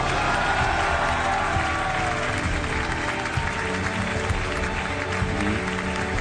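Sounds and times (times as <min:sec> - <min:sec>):
faint cheers: 0:00.0 - 0:02.7
large audience applauding at an award ceremony: 0:00.0 - 0:06.2.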